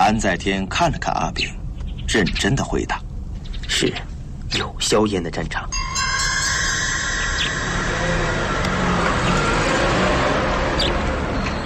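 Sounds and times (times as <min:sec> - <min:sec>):
road noise: 0:00.0 - 0:11.6
speech: 0:00.1 - 0:03.0, 0:03.7 - 0:06.3
canteen supply truck driving past: 0:06.5 - 0:11.6.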